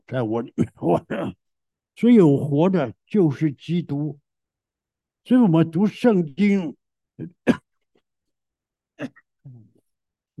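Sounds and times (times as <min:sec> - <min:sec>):
speech: 0:00.1 - 0:01.4, 0:02.0 - 0:04.2, 0:05.2 - 0:07.6, 0:09.0 - 0:09.6
harsh throat clearing: 0:07.2 - 0:07.7, 0:09.0 - 0:09.7
person coughing during a talk on reading the Bible: 0:07.4 - 0:07.7, 0:09.0 - 0:09.2.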